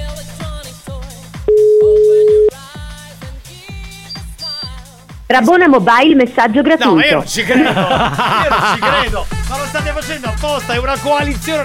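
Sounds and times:
busy rhythmic music with regular beats: 0.0s - 11.6s
telephone call tone while phoning a voicemail: 1.5s - 2.5s
speech: 5.3s - 11.6s
laughter: 7.3s - 9.3s.

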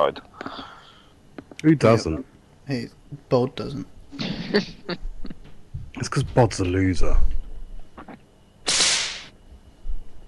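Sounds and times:
speech: 0.0s - 0.7s, 1.6s - 5.1s, 6.0s - 7.3s
single sharp whip crack: 8.7s - 9.3s.

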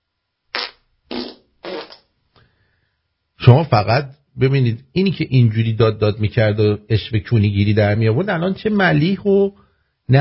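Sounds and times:
fart sound effect from a button: 0.5s - 2.1s
speech: 3.5s - 10.1s.

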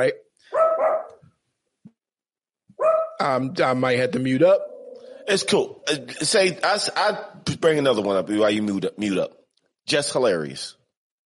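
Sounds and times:
speech: 0.0s - 0.2s, 3.2s - 4.7s, 5.3s - 10.8s
dog barking: 0.5s - 1.2s, 2.8s - 3.2s.

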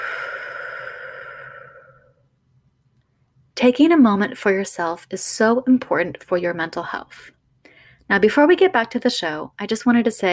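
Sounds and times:
long deep exhaled breath: 0.0s - 2.3s
speech: 3.6s - 7.4s, 8.1s - 10.3s.

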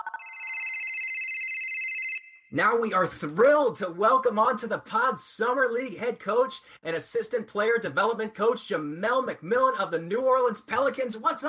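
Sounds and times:
telephone ringing for an incoming call: 0.0s - 2.5s
speech: 2.5s - 11.4s.

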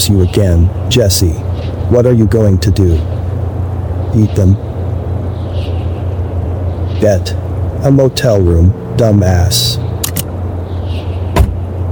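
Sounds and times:
speech: 0.0s - 3.2s, 4.1s - 4.7s, 7.0s - 9.9s
car idling at the curb: 0.0s - 11.9s
car door slamming shut: 11.3s - 11.6s
car door opening: 11.3s - 11.7s.

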